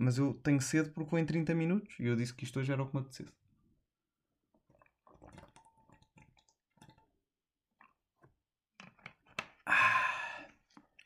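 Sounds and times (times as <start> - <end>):
speech: 0.0 - 3.4
person gulping drinking water: 4.5 - 7.2, 9.6 - 11.0
loud breathy sigh of relief: 9.6 - 10.6.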